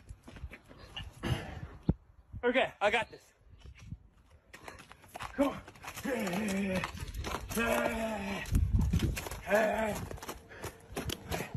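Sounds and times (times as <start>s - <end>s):
speech: 2.4s - 3.4s, 5.4s - 7.0s, 7.6s - 8.5s, 9.5s - 10.1s
horse hooves stepping up into a trailer: 4.5s - 11.5s.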